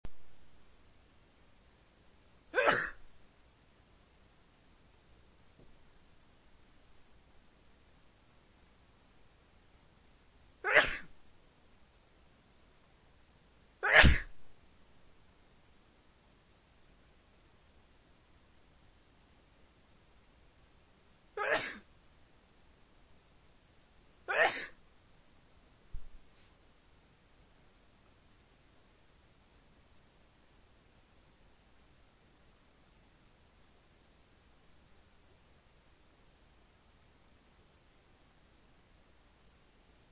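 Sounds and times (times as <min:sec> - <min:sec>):
man with a cold coughing: 0:02.6 - 0:03.0, 0:10.7 - 0:11.1, 0:13.8 - 0:14.3, 0:21.4 - 0:21.8, 0:24.3 - 0:24.8.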